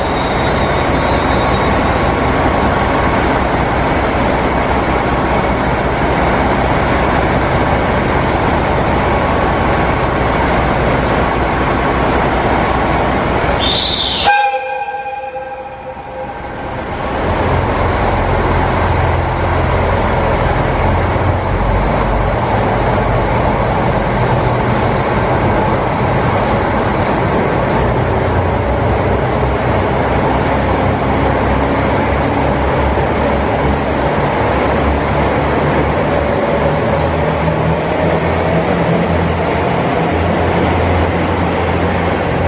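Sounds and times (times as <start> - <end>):
diesel tourist train engine rumbling as it departs a station: 0.0 - 42.4
diesel tourist train horn blast: 13.6 - 17.0.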